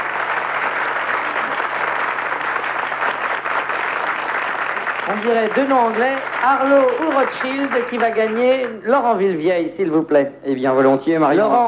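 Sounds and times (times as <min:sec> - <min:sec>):
large audience applauding a contestant: 0:00.0 - 0:08.8
speech: 0:05.1 - 0:11.6.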